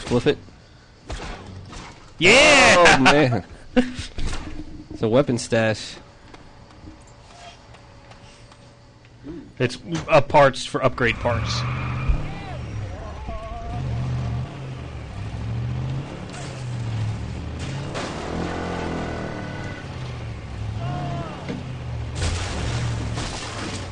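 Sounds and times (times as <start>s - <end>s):
speech: 0.1s - 0.5s, 2.2s - 4.3s, 5.0s - 6.0s, 9.2s - 11.8s
laughter: 2.7s - 4.2s
video game car engine rumble driving past: 11.3s - 23.2s.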